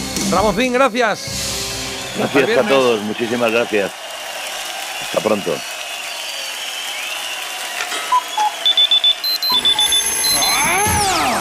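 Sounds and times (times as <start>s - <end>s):
speech: 0.3s - 4.0s, 5.1s - 5.7s
electronic alarm clock beeping in short tones: 8.1s - 11.0s.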